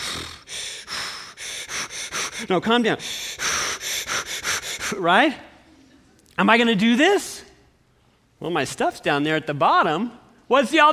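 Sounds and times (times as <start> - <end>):
person imitating breathing through a snorkel tube: 0.0 - 5.0
speech: 2.4 - 3.2, 4.9 - 5.5, 6.4 - 7.4, 8.4 - 10.9.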